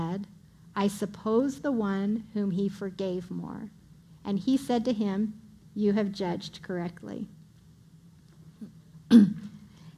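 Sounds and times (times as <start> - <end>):
faint low hum: 0.0 - 9.9
speech: 0.2 - 7.4, 8.6 - 9.4
throat clearing: 8.6 - 9.6.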